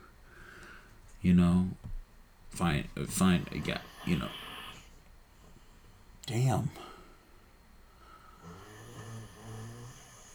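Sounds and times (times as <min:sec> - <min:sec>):
speech: 0:01.2 - 0:01.9, 0:02.6 - 0:04.5, 0:06.3 - 0:06.9
man snoring: 0:03.2 - 0:04.9, 0:08.4 - 0:10.3.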